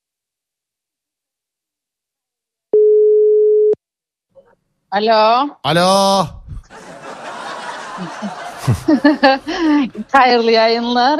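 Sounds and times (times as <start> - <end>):
phone ringback tone during outgoing call: 2.8 - 3.8
speech: 4.9 - 6.4, 8.0 - 11.1
laughter: 6.4 - 11.1.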